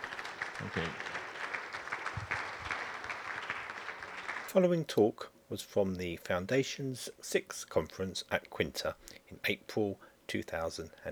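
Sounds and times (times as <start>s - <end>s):
audience applause closing a conference talk: 0.0s - 4.6s
speech: 0.6s - 1.1s, 4.5s - 11.0s.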